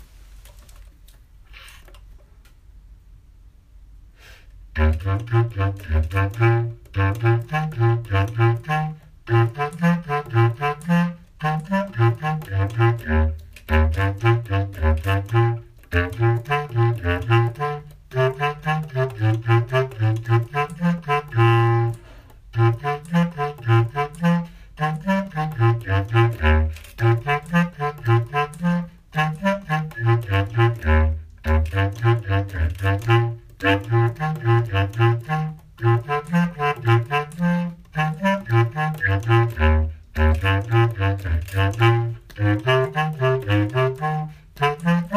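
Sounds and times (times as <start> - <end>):
bass clarinet playing moderato: 4.7 - 45.1.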